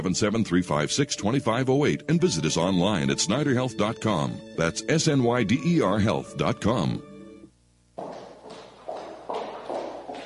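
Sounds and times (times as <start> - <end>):
speech: 0.0 - 7.1
footsteps walking down a street: 7.9 - 10.2.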